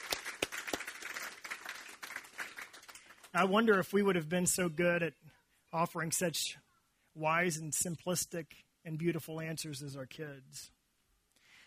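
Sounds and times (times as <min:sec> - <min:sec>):
audience applauding for children: 0:00.0 - 0:03.4
sharp individual claps: 0:00.0 - 0:03.4
speech: 0:03.4 - 0:10.8.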